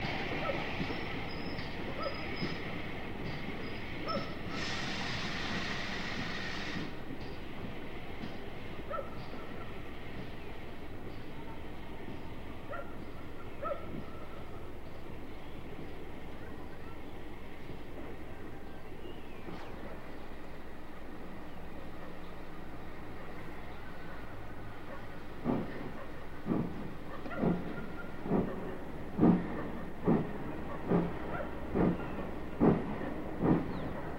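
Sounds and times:
coal train: 0.0 - 34.1.

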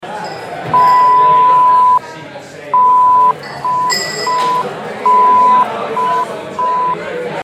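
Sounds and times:
glasses chinking: 0.0 - 1.6, 3.3 - 4.8
party ambience in a medium hall: 0.0 - 7.4.

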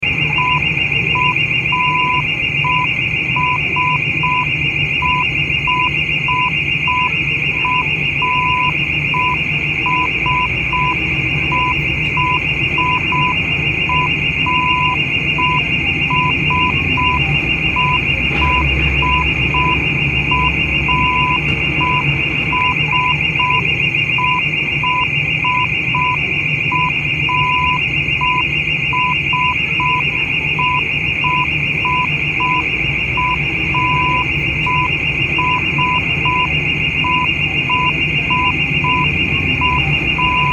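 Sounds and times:
burglar alarm ringing in a room: 0.0 - 40.5.

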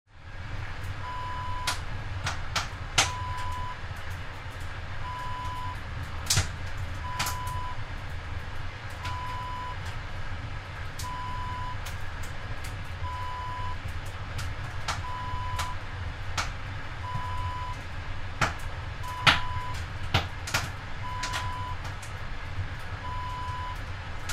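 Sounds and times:
wood burning in a sauna stove: 0.1 - 24.3.

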